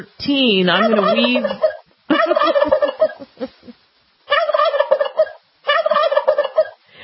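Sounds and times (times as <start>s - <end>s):
speech: 0.0s - 2.7s
turkey gobbling in a studio: 0.8s - 3.4s, 4.3s - 6.8s.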